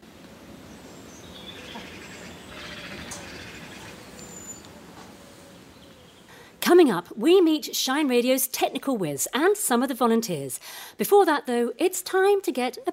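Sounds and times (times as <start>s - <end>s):
steady quiet outdoor hiss: 0.0s - 12.9s
evening birdsong: 0.1s - 6.6s
speech: 6.7s - 12.9s.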